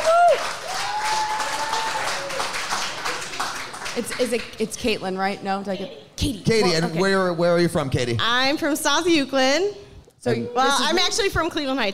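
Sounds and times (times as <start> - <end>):
whoops and cheers: 0.0 - 2.6
audience applauding for a volunteer: 0.0 - 4.6
speech: 4.0 - 11.9.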